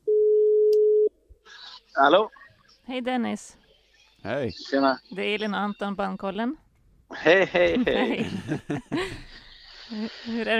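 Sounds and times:
telephone ringing tone while calling: 0.1s - 1.1s
speech: 2.0s - 3.6s, 4.2s - 10.5s
laughter: 7.1s - 10.3s.

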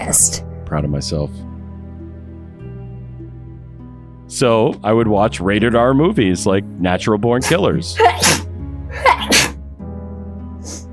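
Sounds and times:
speech: 0.1s - 1.5s, 4.3s - 8.4s
loud sneeze after a breathy build-up: 7.4s - 9.6s.

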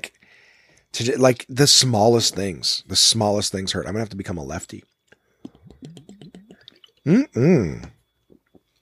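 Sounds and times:
soft hummed murmur: 0.0s - 8.7s
speech: 1.0s - 4.9s, 7.1s - 7.9s
swallowing: 5.1s - 8.7s
wet mouth clicks: 5.1s - 8.7s
sipping sparkling water: 5.4s - 8.7s.

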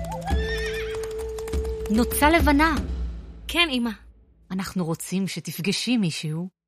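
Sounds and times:
horse hooves clip-clopping: 0.0s - 2.6s
shrill horse whinny: 0.4s - 1.2s
speech: 1.9s - 6.6s.

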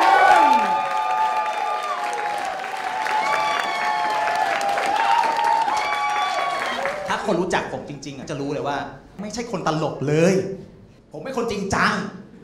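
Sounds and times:
brief cheers: 0.0s - 7.2s
audience applauding: 0.0s - 7.5s
speech: 7.3s - 12.2s.

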